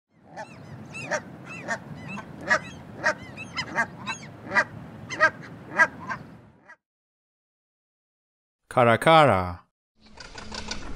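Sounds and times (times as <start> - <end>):
Canada goose honking: 0.3 - 6.2
speech: 1.1 - 2.7, 8.7 - 9.6.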